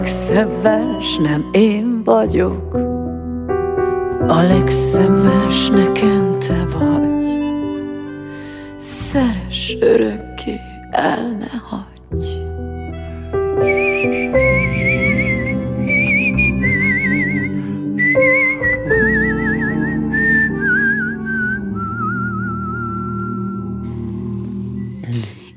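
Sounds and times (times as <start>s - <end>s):
instrumental backing music: 0.0s - 25.5s
speech: 0.1s - 2.8s, 4.3s - 7.4s, 9.1s - 12.4s
person whistling a wavering melody with vibrato: 13.6s - 23.8s.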